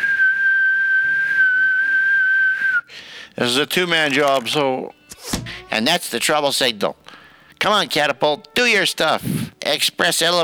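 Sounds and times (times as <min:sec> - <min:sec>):
shrill whistle from an arrow: 0:00.0 - 0:02.9
speech: 0:03.4 - 0:05.0, 0:05.8 - 0:07.0, 0:07.6 - 0:10.4.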